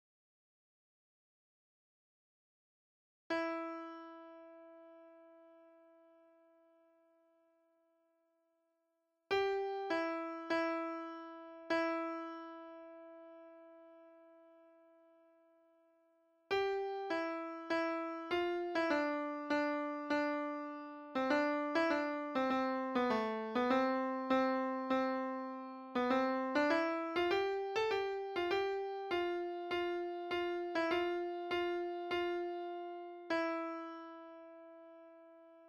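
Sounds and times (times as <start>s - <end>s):
alternative MIDI piano: 3.3s - 6.1s, 9.3s - 14.8s, 16.5s - 35.6s.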